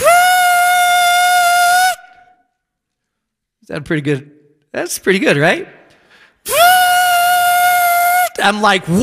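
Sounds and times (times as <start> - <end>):
person imitating a whistling stovetop kettle: 0.0 - 2.1, 6.5 - 8.4
speech: 3.7 - 5.8, 8.4 - 9.0.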